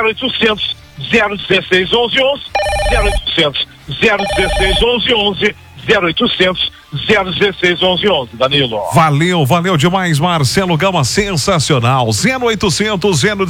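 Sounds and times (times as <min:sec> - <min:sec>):
lively fast talk: 0:00.0 - 0:13.4
speech: 0:00.0 - 0:13.4
electronic telephone ringing as a call is placed: 0:02.6 - 0:03.3, 0:04.0 - 0:05.0.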